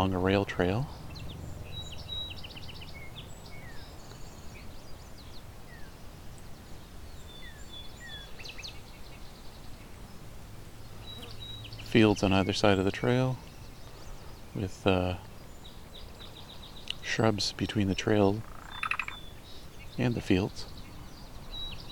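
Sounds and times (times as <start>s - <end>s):
speech: 0.0s - 1.0s, 11.9s - 13.5s, 14.6s - 15.3s, 17.1s - 18.5s, 20.0s - 20.7s
field sparrow, savannah sparrow and yellow warbler singing in an open field beside a rail trail: 0.0s - 21.9s.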